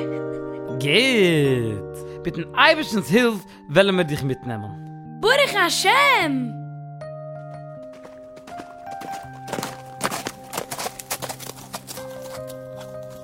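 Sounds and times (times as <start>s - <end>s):
speech: 0.8s - 6.6s
hooves of a horse pulling a sleigh clip-clopping: 7.9s - 13.2s.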